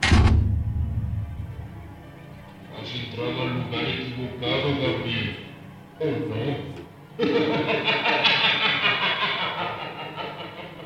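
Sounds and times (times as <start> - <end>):
heavy door slamming shut: 0.0 - 2.0
speech: 2.8 - 5.4, 6.0 - 8.5
laughter: 7.1 - 10.8.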